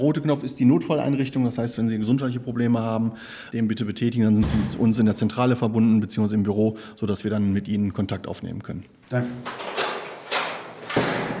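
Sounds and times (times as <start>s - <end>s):
speech: 0.0s - 9.7s
heavy prison cell door sliding and swinging shut: 4.3s - 5.1s, 9.3s - 11.3s.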